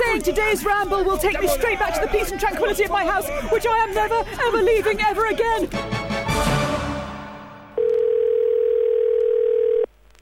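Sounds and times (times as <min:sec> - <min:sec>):
speech: 0:00.2 - 0:06.7
telephone ringing: 0:07.8 - 0:09.9.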